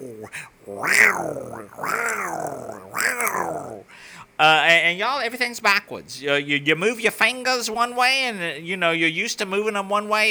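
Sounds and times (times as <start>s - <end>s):
person's voice imitating a lion growling: 0.0s - 3.9s
speech: 0.2s - 2.5s, 4.8s - 10.2s.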